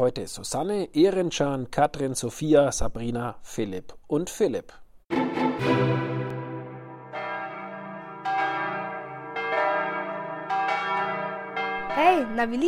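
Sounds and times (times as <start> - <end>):
speech: 0.0 - 4.8, 12.2 - 12.6
church bells ringing: 5.1 - 12.6.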